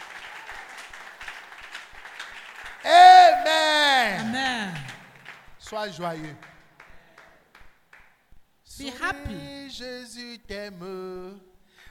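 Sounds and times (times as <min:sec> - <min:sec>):
crowd clapping: 0:00.0 - 0:08.2
speech: 0:05.7 - 0:06.5, 0:08.8 - 0:11.5.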